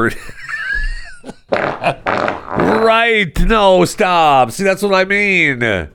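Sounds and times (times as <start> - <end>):
speech: 0.0 - 0.5, 1.2 - 5.9
novelty fart bag flatulent blasts: 1.5 - 3.0.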